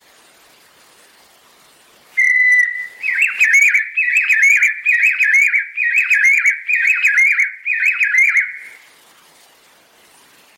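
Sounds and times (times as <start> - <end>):
singing quail Dactylortyx thoracicus whistled song: 2.2 - 8.8.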